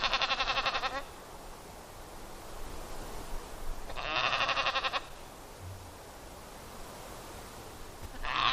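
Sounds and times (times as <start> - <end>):
Dall sheep harsh pulsed bleats in Denali, Alaska: 0.0 - 1.1, 3.9 - 5.2, 8.1 - 8.5
quiet hiss: 0.0 - 8.5.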